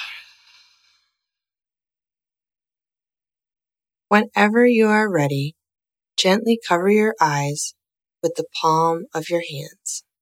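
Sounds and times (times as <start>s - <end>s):
slow long breath out through the nose: 0.0s - 1.2s
speech: 4.1s - 5.6s, 6.2s - 10.1s.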